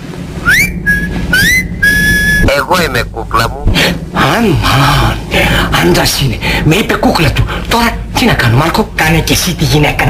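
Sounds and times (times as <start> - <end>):
person whistling into a telephone: 0.4 - 2.5
speech: 2.6 - 10.0.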